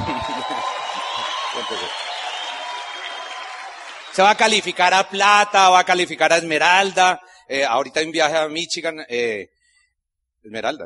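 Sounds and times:
laughter: 0:00.0 - 0:01.3
crowd applauding: 0:00.0 - 0:06.6
speech: 0:01.6 - 0:02.0, 0:04.2 - 0:09.5, 0:10.4 - 0:10.8.

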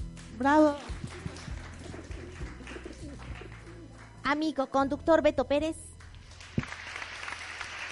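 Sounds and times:
speech: 0:00.4 - 0:00.9, 0:04.3 - 0:05.9
pigeons cooing overhead: 0:01.0 - 0:04.0.

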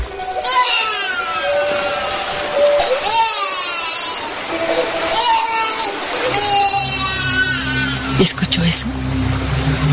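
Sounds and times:
steady rushing background: 0:00.0 - 0:09.9
baby crying in rising and falling wails: 0:00.2 - 0:08.2
deep rumble: 0:08.0 - 0:09.9.

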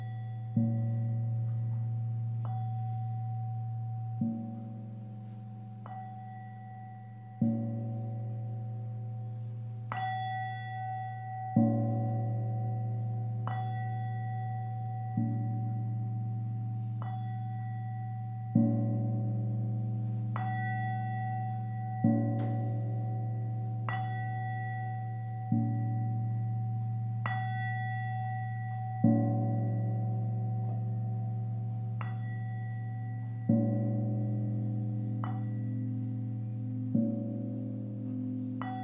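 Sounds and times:
Tibetan singing bowls struck and ringing: 0:00.0 - 0:38.8.

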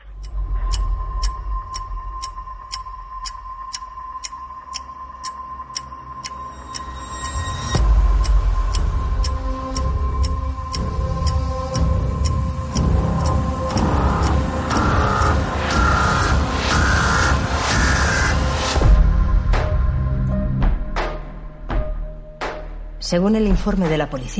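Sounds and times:
clock-like ticks in film trailer audio: 0:00.0 - 0:18.7
sustained tone in film trailer audio: 0:00.0 - 0:18.8
dramatic film trailer music: 0:00.0 - 0:24.3
speech: 0:23.1 - 0:24.3.

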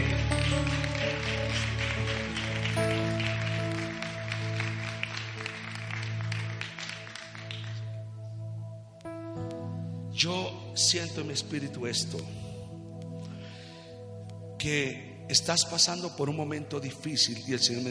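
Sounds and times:
church audience clapping: 0:00.0 - 0:08.0
sustained organ-like keyboard chords: 0:00.0 - 0:17.8
speech: 0:10.2 - 0:12.5, 0:14.6 - 0:17.8.

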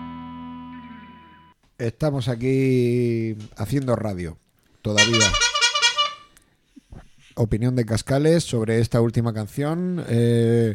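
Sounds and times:
speech: 0:01.8 - 0:05.5, 0:07.4 - 0:10.7
loud blaring horn honking: 0:05.0 - 0:06.3.

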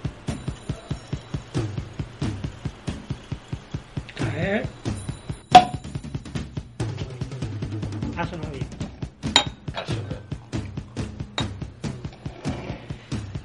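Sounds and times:
steady rhythmic thumping: 0:00.0 - 0:12.2
speech: 0:04.4 - 0:04.8
light glass clinks: 0:05.0 - 0:06.0, 0:09.4 - 0:09.9
sparkling wine bottle cork popping: 0:05.5 - 0:05.9, 0:09.3 - 0:09.9.

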